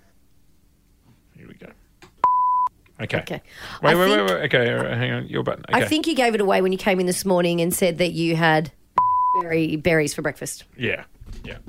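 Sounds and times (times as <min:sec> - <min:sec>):
electronic censor bleep: 0:02.2 - 0:02.7, 0:09.0 - 0:09.5
speech: 0:03.0 - 0:08.8, 0:09.4 - 0:11.6.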